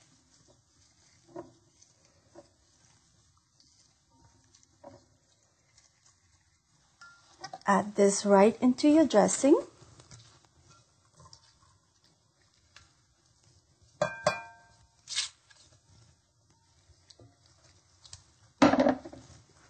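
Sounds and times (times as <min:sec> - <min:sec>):
utensil clinking against a bowl while stirring salad dressing: 0:07.0 - 0:07.3, 0:14.0 - 0:14.8
speech: 0:07.7 - 0:09.7.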